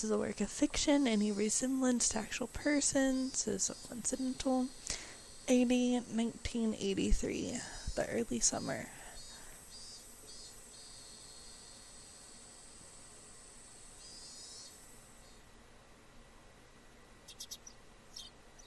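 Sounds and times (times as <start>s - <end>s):
speech: 0.0s - 9.0s
steady hiss of outdoor ambience: 0.0s - 18.6s
faint high-pitched birds chirping in the morning: 0.8s - 11.9s, 14.0s - 15.4s, 17.2s - 18.6s.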